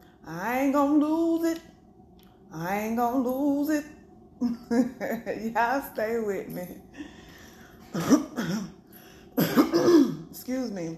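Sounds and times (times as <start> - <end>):
speech: 0.3 - 1.7, 2.5 - 7.1, 9.8 - 10.9
person coughing: 7.8 - 8.8, 9.4 - 10.3
person clearing throat: 7.9 - 8.8, 9.4 - 10.3.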